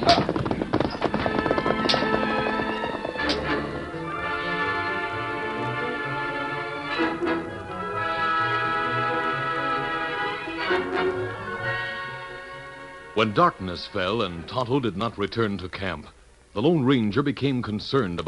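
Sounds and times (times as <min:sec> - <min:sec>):
hoofbeats of horses galloping with riders on horseback: 0:00.0 - 0:05.9
orchestral music: 0:01.6 - 0:14.9
speech: 0:13.2 - 0:18.2.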